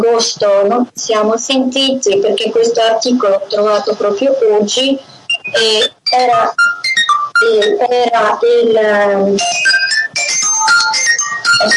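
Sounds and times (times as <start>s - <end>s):
speech: 0.0s - 6.8s, 7.4s - 9.9s, 11.6s - 11.7s
phone ringtone for an incoming call: 5.3s - 7.8s, 9.4s - 11.7s.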